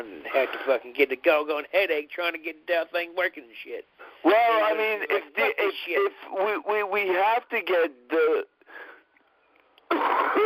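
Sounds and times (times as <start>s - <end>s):
speech: 0.3s - 8.5s
person coughing: 9.9s - 10.4s.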